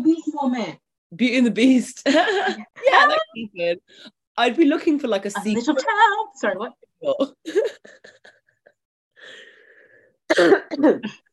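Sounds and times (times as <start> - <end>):
speech: 0.5 - 8.3, 10.3 - 11.2
harsh raspy coughing: 10.3 - 11.3.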